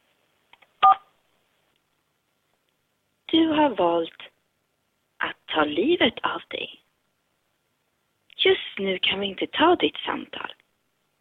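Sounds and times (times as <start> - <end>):
telephone keypad tones from pressing keys in an automated phone menu: 0.8 - 1.0
speech: 3.3 - 4.3, 5.6 - 6.8, 8.4 - 10.6.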